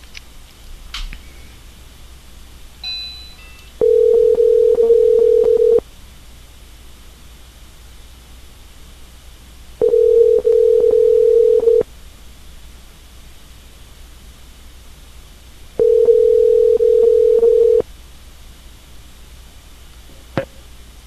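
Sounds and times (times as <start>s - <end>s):
faint constant hiss: 0.0s - 21.0s
ringing tone of an outgoing telephone call: 2.8s - 5.8s, 9.8s - 11.8s, 15.8s - 17.8s.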